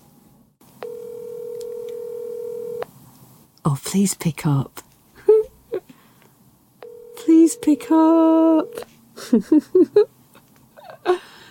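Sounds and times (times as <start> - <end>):
steady telephone line tone: 0.8 - 2.8, 6.8 - 8.8
speech: 3.6 - 4.9, 7.5 - 10.1
laughter: 9.2 - 10.1.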